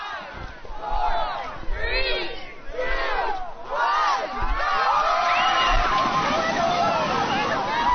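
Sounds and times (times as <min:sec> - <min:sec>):
crowd shrieking and cheering: 0:00.0 - 0:07.9
water splashing as people rush into the icy ocean: 0:04.9 - 0:07.9.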